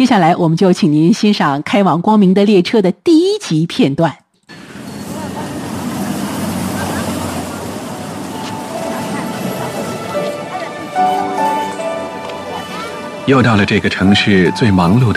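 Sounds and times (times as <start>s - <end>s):
speech: 0.0s - 4.2s, 13.3s - 15.1s
busy rush-hour street traffic roar: 4.5s - 15.1s
faint indistinct voices: 4.9s - 15.1s.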